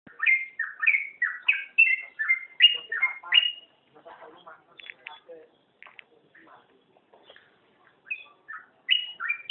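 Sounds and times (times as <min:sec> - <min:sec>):
Oriental magpie-robin singing whistled phrases: 0:00.1 - 0:03.7, 0:08.0 - 0:09.5
Oriental magpie-robin twittering: 0:00.1 - 0:09.5.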